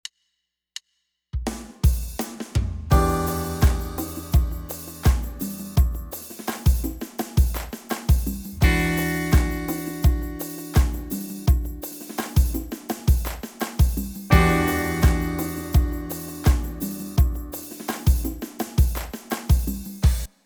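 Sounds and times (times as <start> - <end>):
funk keyboards: 2.9 - 19.9.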